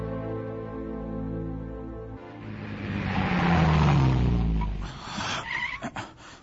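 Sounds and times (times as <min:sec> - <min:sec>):
car engine running and revving: 0:02.1 - 0:06.0
tire squeal: 0:02.3 - 0:06.2.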